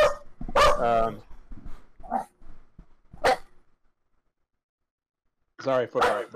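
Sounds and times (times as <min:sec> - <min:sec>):
pit bull barking: 0:00.0 - 0:01.1, 0:03.2 - 0:03.5, 0:06.0 - 0:06.3
speech: 0:00.8 - 0:01.3, 0:05.6 - 0:06.3.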